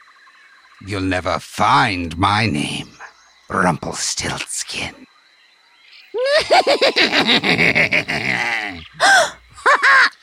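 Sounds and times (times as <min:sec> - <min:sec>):
speech: 0:00.8 - 0:05.1, 0:06.2 - 0:10.2
little man's rhythmic cackling laughter: 0:06.2 - 0:10.2
female voice gasping in shock with quick breathy catches: 0:09.0 - 0:09.4.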